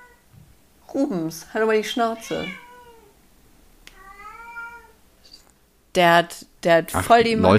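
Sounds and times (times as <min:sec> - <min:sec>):
speech: 0:00.9 - 0:02.6, 0:06.0 - 0:07.5
pet cat meowing: 0:01.6 - 0:03.2, 0:03.9 - 0:05.0.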